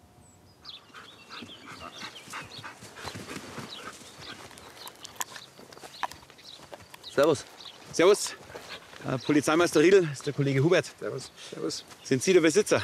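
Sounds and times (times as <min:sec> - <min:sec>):
several dogs barking and yelping at a dog training school: 0:00.7 - 0:05.3
dogs panting at a dog training school: 0:00.7 - 0:12.0
dogs' pattering movement at a dog training school: 0:03.0 - 0:10.4
speech: 0:07.2 - 0:08.4, 0:09.0 - 0:12.8.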